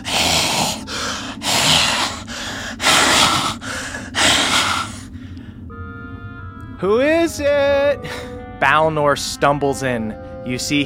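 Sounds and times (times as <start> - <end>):
voice imitating harsh raspy labored breathing: 0.0 - 6.4
speech: 6.8 - 10.8.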